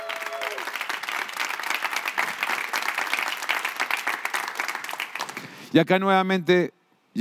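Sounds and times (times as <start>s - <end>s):
large audience applauding: 0.0s - 5.6s
speech: 5.7s - 7.2s.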